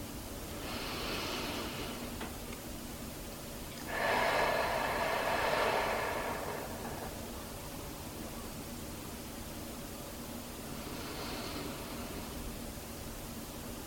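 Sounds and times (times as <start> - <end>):
deep breathing during a breathing exercise: 0.5 - 2.2, 3.8 - 8.3, 10.7 - 12.5.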